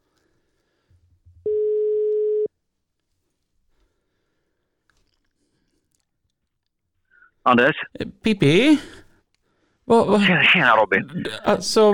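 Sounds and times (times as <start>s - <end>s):
telephone ringing tone of an outgoing phone call: 1.4s - 2.5s
speech: 7.4s - 9.0s, 9.9s - 11.9s.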